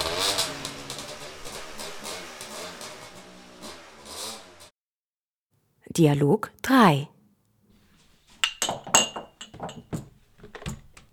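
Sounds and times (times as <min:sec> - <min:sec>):
motor vehicle engine driving off: 0:00.0 - 0:04.7
speech: 0:06.0 - 0:07.2.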